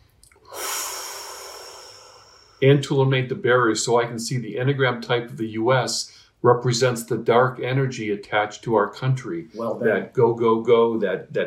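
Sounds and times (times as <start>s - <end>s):
person taking a long airy breath: 0.4s - 2.6s
speech: 2.6s - 11.4s.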